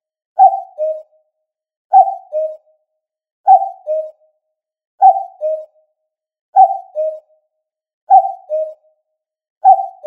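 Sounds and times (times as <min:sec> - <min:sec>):
common cuckoo calling: 0:00.4 - 0:01.1, 0:01.9 - 0:02.7, 0:03.5 - 0:04.2, 0:05.0 - 0:05.8, 0:06.6 - 0:07.3, 0:08.1 - 0:08.9, 0:09.6 - 0:10.0.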